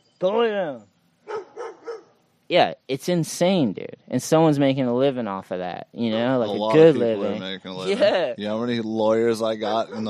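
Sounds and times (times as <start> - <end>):
speech: 0.2 - 0.9, 2.5 - 10.0
neighbor's dog barking: 1.2 - 2.2, 9.9 - 10.0.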